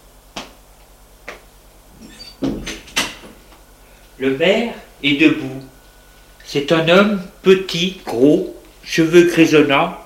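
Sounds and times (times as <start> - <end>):
door opening with a clunk and rattle: 2.0 - 3.4
speech: 4.2 - 5.7, 6.5 - 10.0.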